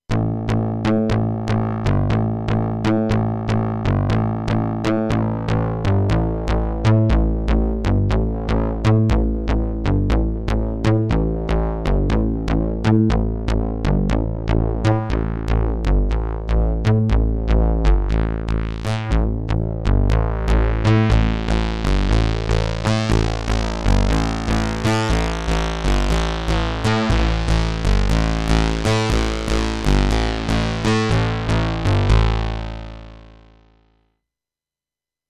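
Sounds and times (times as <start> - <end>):
iK Multimedia Uno Synth synthesizer and sequencer: 0.0 - 33.8.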